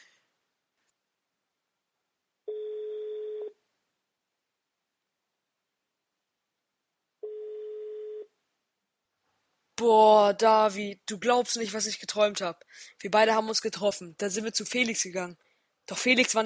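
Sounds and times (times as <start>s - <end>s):
telephone ringback tone while placing a call: 2.5s - 3.6s, 7.2s - 8.3s
speech: 9.8s - 16.4s.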